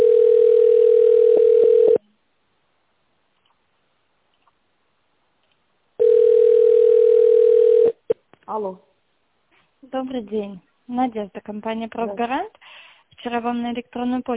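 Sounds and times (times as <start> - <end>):
telephone ringing tone while a call is transferred: 0.0 - 2.0, 6.0 - 8.2
speech: 8.6 - 8.9, 9.9 - 12.6, 13.2 - 14.3.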